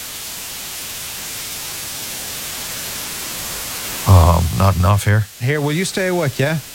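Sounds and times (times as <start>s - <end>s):
brown noise: 4.1s - 5.3s
speech: 4.4s - 6.7s.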